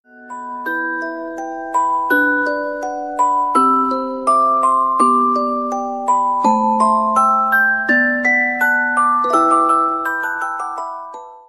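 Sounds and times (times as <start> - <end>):
sweet tone: 0.1 - 11.4.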